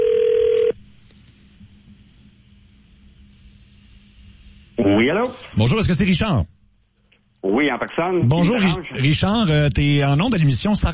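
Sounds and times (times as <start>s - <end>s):
telephone ringing tone as a call is dialed: 0.0s - 0.8s
speech: 4.9s - 6.5s, 7.6s - 10.9s.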